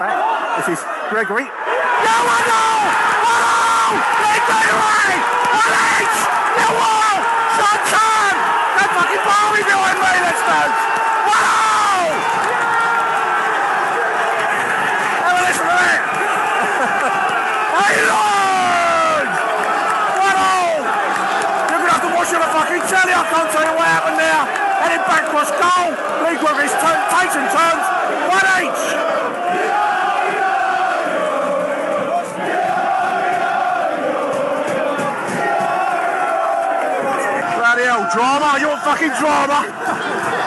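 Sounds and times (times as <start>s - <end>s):
speech: 0.0s - 12.7s, 22.6s - 29.8s, 38.2s - 40.0s
big football stadium crowd roaring: 0.0s - 40.4s
laughter: 15.6s - 18.1s, 39.0s - 40.4s.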